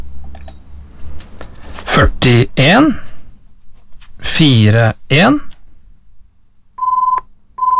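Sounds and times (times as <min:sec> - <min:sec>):
speech: 0:02.0 - 0:03.0, 0:04.3 - 0:05.5
telephone ringing beeps: 0:06.8 - 0:07.7.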